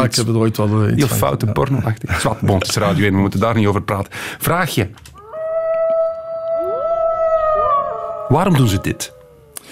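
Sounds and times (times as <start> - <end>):
speech: 0.0 - 5.2, 8.3 - 9.2
several wolves howling together in chorus: 5.2 - 9.7.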